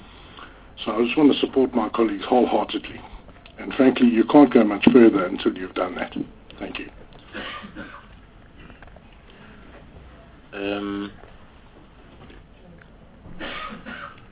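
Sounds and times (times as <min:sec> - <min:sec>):
speech: 0:00.9 - 0:07.0, 0:10.6 - 0:11.3
loud rough person coughing: 0:07.3 - 0:08.1, 0:13.4 - 0:14.2.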